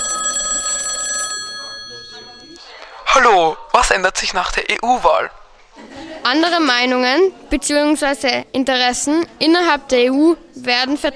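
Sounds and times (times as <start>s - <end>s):
telephone ringing for an incoming call: 0.0s - 2.8s
speech: 3.2s - 5.4s, 6.2s - 11.1s.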